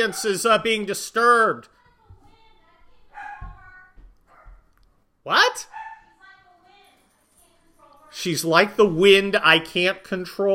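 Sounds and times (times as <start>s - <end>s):
dog barking upstairs in another part of the house: 0.0s - 0.5s, 3.1s - 3.6s, 4.3s - 4.7s, 5.6s - 6.1s
speech: 0.0s - 1.8s, 5.2s - 5.8s, 8.1s - 10.5s.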